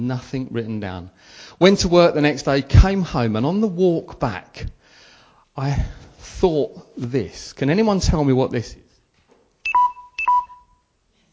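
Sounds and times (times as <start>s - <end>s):
speech: 0.0s - 4.8s, 5.6s - 8.8s
phone low-battery warning beeps: 9.6s - 10.9s.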